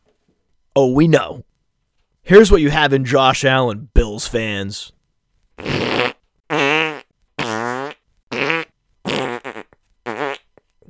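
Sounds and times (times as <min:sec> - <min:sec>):
speech: 0:00.8 - 0:01.5, 0:02.3 - 0:05.0, 0:05.6 - 0:06.1
loud buzzy fart noise sound effects: 0:05.6 - 0:10.6.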